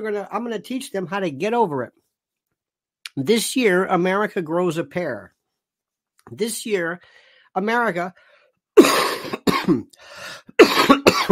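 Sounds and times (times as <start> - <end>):
speech: 0.0 - 2.0, 3.2 - 5.4, 6.3 - 11.2
person coughing: 8.8 - 11.2.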